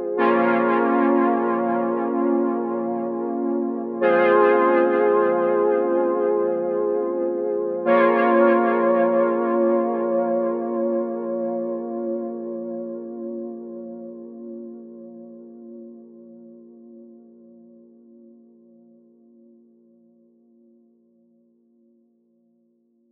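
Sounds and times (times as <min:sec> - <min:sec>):
F minor chords melody loop at 125 BPM: 0:00.1 - 0:13.3.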